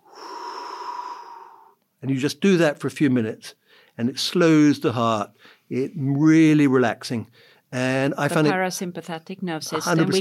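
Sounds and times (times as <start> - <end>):
long steady exhale with faint whistling tone during box breathing exercise: 0.0 - 1.8
speech: 2.0 - 10.1.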